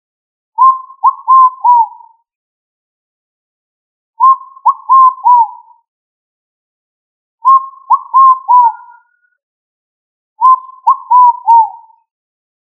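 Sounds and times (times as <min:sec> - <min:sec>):
pigeon cooing: 0:00.6 - 0:02.0, 0:04.2 - 0:05.7, 0:07.5 - 0:09.0, 0:10.4 - 0:12.0.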